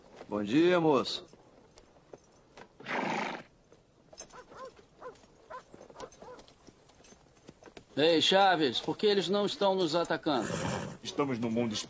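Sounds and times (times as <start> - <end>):
horse hooves clip-clopping in a canyon: 0.0 - 11.8
speech: 0.3 - 1.4, 8.0 - 11.8
horse whinnying: 2.8 - 3.5, 10.3 - 11.1.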